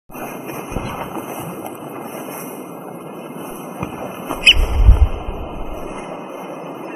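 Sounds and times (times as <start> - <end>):
Fluvicola nengeta calling: 4.3 - 4.8.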